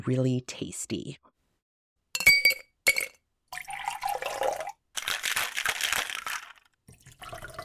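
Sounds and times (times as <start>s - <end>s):
speech: 0.0s - 1.3s
bright glassy clinks: 2.2s - 3.2s
cocktail pouring into a glass with a gurgling bubbly rush: 3.0s - 7.6s.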